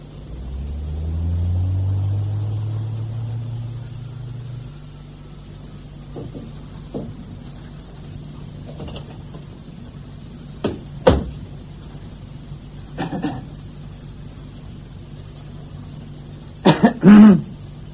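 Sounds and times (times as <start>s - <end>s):
lift motor rumble in a concrete cube: 0.0s - 17.9s
person coughing: 13.0s - 13.5s, 16.6s - 17.5s.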